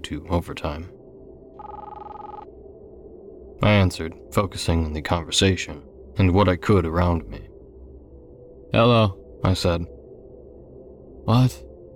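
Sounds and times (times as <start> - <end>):
speech: 0.0 - 1.0, 3.7 - 7.5, 8.7 - 10.0, 11.2 - 11.7
cell phone ringing: 1.6 - 2.5.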